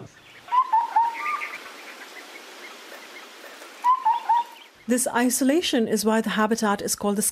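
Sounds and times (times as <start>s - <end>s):
small mountaintop rainforest bird calling with whistled notes: 0.0s - 1.6s, 3.8s - 4.7s
speech: 4.9s - 7.3s.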